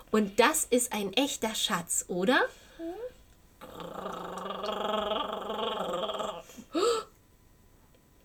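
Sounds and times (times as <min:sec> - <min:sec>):
speech: 0:00.1 - 0:02.6
stomach growling: 0:02.9 - 0:06.7.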